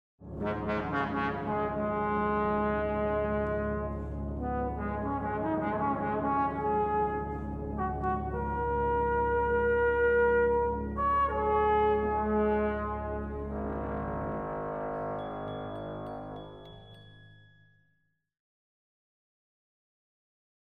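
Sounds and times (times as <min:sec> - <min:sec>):
trombone: 0:00.2 - 0:16.6.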